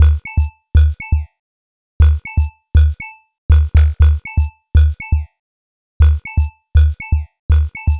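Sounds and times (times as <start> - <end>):
modular electronica beats: 0.0 - 0.2, 2.0 - 5.2, 6.0 - 7.9.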